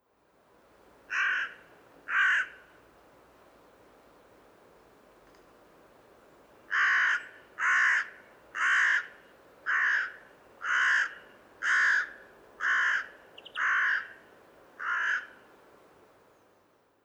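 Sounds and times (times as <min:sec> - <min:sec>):
hooded crow calling: 0:01.1 - 0:02.7, 0:06.7 - 0:15.5.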